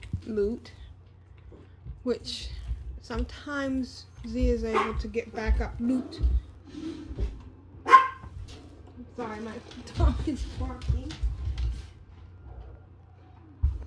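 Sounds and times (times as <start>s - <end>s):
low hum: 0.0s - 13.8s
speech: 0.3s - 0.8s, 2.0s - 7.3s, 9.2s - 11.3s
dog barking: 4.7s - 5.0s, 7.8s - 8.3s.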